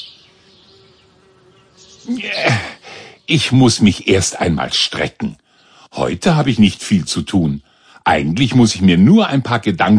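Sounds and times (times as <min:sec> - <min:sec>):
bees buzzing over a meadow on a sunny afternoon: 0:00.0 - 0:03.6
speech: 0:02.0 - 0:02.7, 0:03.3 - 0:05.4, 0:06.0 - 0:09.9.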